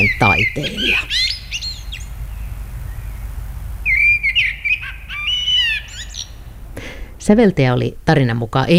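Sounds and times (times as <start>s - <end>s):
speech: 0.0s - 1.3s, 7.3s - 8.7s
common blackbird singing: 0.0s - 6.4s
high bird chirps: 0.0s - 6.5s
low steady outdoor rumble: 0.0s - 8.7s.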